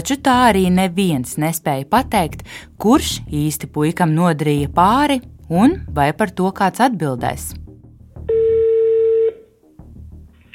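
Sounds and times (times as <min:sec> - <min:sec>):
speech: 0:00.0 - 0:07.6
soft low musical background: 0:00.0 - 0:10.5
electronic telephone dialing tone: 0:08.3 - 0:09.4.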